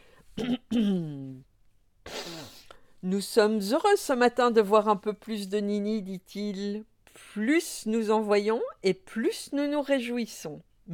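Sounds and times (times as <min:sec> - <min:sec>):
speech: 0:00.4 - 0:01.2, 0:03.1 - 0:10.9
father clearing throat: 0:00.4 - 0:01.4.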